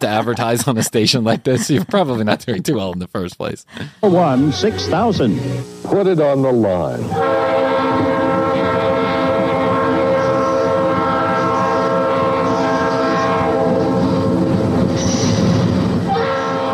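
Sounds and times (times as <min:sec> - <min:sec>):
laughter: 0:00.0 - 0:03.2
speech: 0:00.0 - 0:08.1
train horn blaring: 0:04.3 - 0:06.0, 0:07.0 - 0:16.7
train rumbling along rails: 0:07.2 - 0:16.7.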